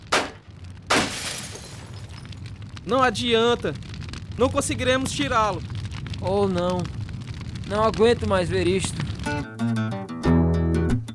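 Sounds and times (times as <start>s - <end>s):
breaking glass shards scattering: 0.0s - 2.6s
car window glass smashing: 0.2s - 2.4s
speech: 2.8s - 7.0s, 7.7s - 9.9s.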